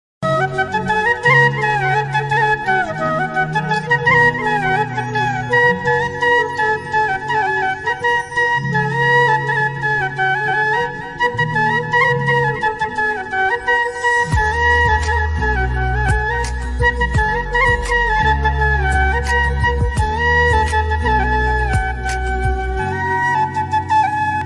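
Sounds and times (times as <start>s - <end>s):
flute instrumental: 0.2s - 24.4s.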